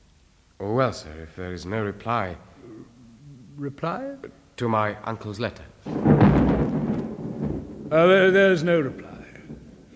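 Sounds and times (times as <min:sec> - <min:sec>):
speech: 0:00.6 - 0:03.0, 0:03.6 - 0:06.3, 0:07.9 - 0:09.1
thunder rumbling from an approaching storm: 0:05.9 - 0:09.9.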